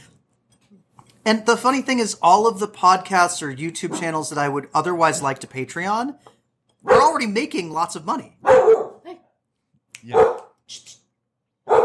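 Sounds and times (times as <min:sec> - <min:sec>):
speech: 0:01.3 - 0:06.3, 0:07.0 - 0:08.8
dog barking: 0:06.8 - 0:07.2, 0:08.4 - 0:09.0, 0:10.1 - 0:10.6, 0:11.6 - 0:11.8.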